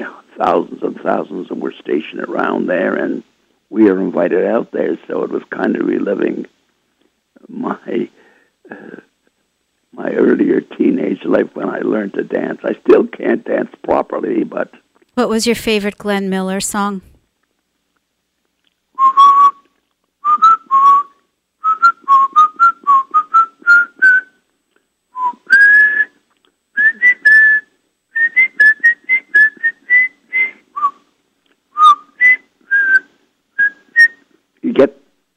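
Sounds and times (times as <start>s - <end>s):
speech: 0.4s - 6.6s, 7.4s - 9.1s, 9.9s - 17.1s
person whistling a lilting swing-era melody: 19.0s - 24.3s, 25.2s - 26.2s, 26.8s - 31.0s, 31.8s - 34.2s.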